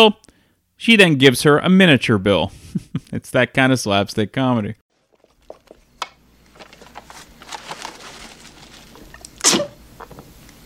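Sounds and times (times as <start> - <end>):
speech: 0.0 - 4.8
sneeze caused by a flower: 9.4 - 9.8.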